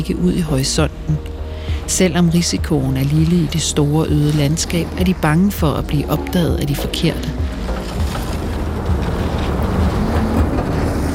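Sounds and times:
speech: 0.0 - 1.3, 1.9 - 7.4
strong wind roaring in a snowstorm: 1.4 - 11.1.

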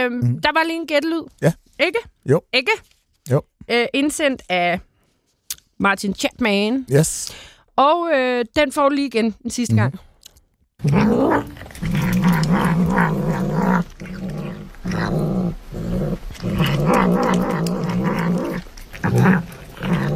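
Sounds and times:
speech: 0.0 - 4.9, 5.8 - 10.1, 10.8 - 14.2, 19.1 - 20.0
dog growling: 10.8 - 20.1.

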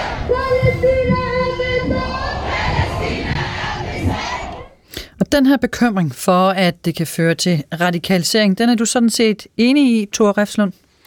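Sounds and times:
large demonstration crowd chanting a slogan in unison: 0.0 - 4.8
speech: 5.3 - 10.8.

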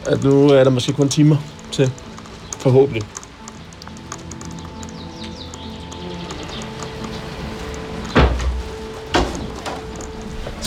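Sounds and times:
speech: 0.1 - 2.0, 2.6 - 3.2
dull knocks on a door: 8.1 - 9.8.

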